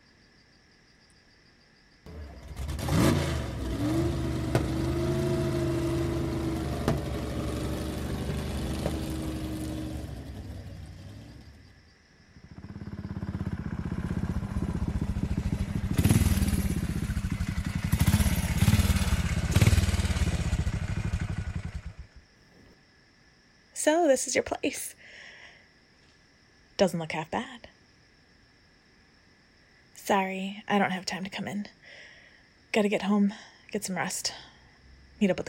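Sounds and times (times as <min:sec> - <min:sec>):
motorcycle starting and riding off carrying a passenger: 0:02.1 - 0:11.7, 0:12.4 - 0:22.1
speech: 0:23.9 - 0:25.0, 0:26.8 - 0:27.7, 0:30.1 - 0:32.0, 0:32.7 - 0:34.5, 0:35.2 - 0:35.4.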